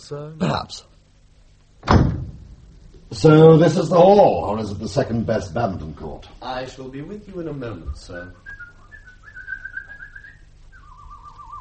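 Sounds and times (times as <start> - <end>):
speech: 0.0 - 0.9, 3.1 - 8.6
person whistling a bird impression in a hall with an echo: 8.4 - 11.6.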